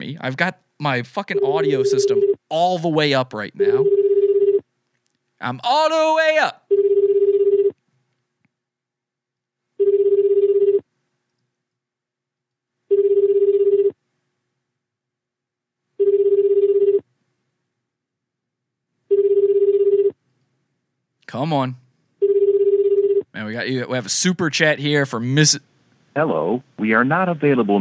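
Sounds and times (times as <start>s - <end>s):
speech: 0.1s - 3.9s, 5.4s - 6.6s, 21.3s - 21.8s, 23.4s - 27.7s
telephone ringback tones of an outgoing call: 6.7s - 7.7s, 9.8s - 10.8s, 12.9s - 13.9s, 16.0s - 17.0s, 19.1s - 20.1s, 22.2s - 23.2s.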